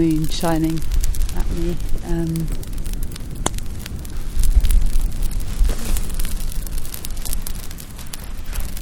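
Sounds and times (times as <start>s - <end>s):
speech: 0.0s - 2.7s
wood campfire crackling on a beach at night: 0.0s - 8.8s.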